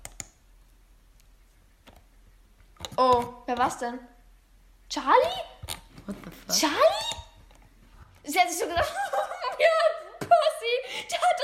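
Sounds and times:
computer mouse clicks: 0.0 - 0.4, 1.2 - 3.7
low hiss: 0.0 - 11.4
speech: 3.0 - 4.1, 4.9 - 5.5, 6.1 - 7.0, 8.3 - 9.9
laughter: 8.8 - 10.8.

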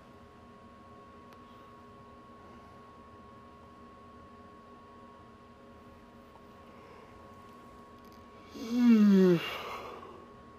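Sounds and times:
drawn-out yawn with a breathy voiced tone: 8.5 - 10.2.

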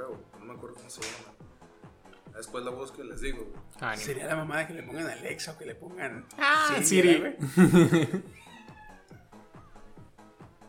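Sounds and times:
speech: 0.8 - 1.3, 2.4 - 8.5
laughter: 7.4 - 8.5
hungry cat meowing: 8.3 - 9.9.

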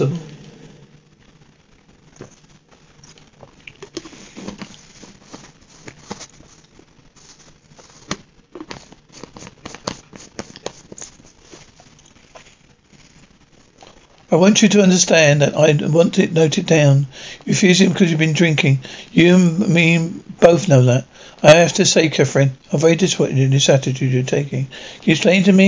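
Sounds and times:
speech: 0.0 - 0.3, 14.4 - 25.6
small plastic packet crinkling and rustling being handled and searched: 2.0 - 14.3.

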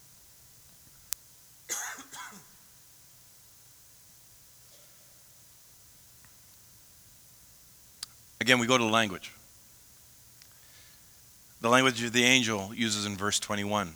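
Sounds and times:
steady low hiss: 0.0 - 13.9
faint clicks: 0.6 - 1.3, 6.2 - 6.4, 8.0 - 8.2, 10.4 - 11.0
person coughing: 1.7 - 2.5
throat clearing: 1.7 - 2.5
speech: 8.5 - 9.4, 11.6 - 13.9.

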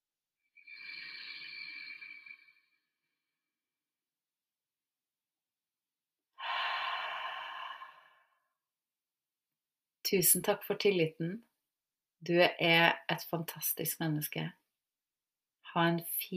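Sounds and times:
deep breathing: 0.6 - 3.0, 6.4 - 8.5
speech: 10.1 - 11.5, 12.2 - 14.6, 15.7 - 16.3.

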